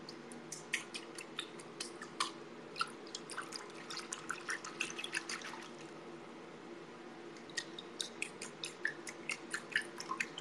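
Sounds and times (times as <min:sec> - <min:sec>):
water sloshing in a bathtub with small splashes and drips: 0:00.0 - 0:06.0, 0:07.4 - 0:10.3.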